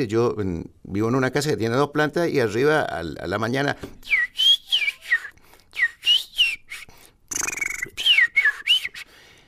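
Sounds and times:
speech: 0.0 - 4.2
person whistling a chirpy birdlike melody in trilling bursts: 4.0 - 9.2.

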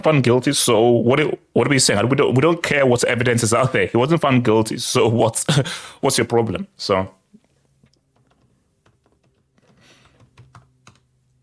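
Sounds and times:
speech: 0.0 - 7.2
rapid clicking of keys on a computer keyboard: 7.9 - 11.4.

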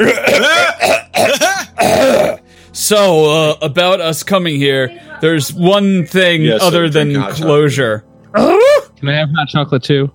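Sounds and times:
speech: 0.0 - 0.5, 2.9 - 10.1
person clearing their throat: 0.0 - 2.4.

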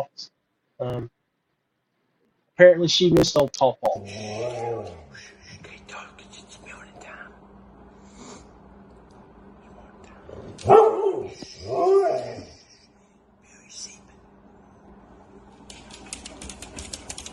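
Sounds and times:
speech: 0.0 - 1.2, 2.6 - 5.3, 10.6 - 12.5
dog barking: 10.6 - 11.4.

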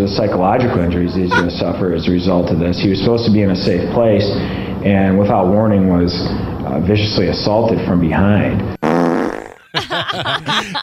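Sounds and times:
speech: 0.0 - 8.8, 10.2 - 10.8
buzzy fart sound effect: 8.8 - 9.6
laughter: 9.6 - 10.8.

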